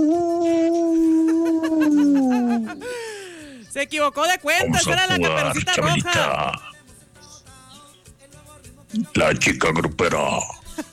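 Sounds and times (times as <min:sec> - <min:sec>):
wolf-like howl in an audio message: 0:00.0 - 0:02.8
speech: 0:03.8 - 0:06.7, 0:09.2 - 0:10.9.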